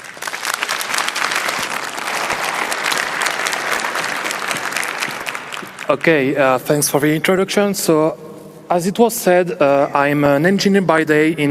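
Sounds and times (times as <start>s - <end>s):
room full of people applauding: 0.0s - 6.3s
speech: 5.9s - 11.4s.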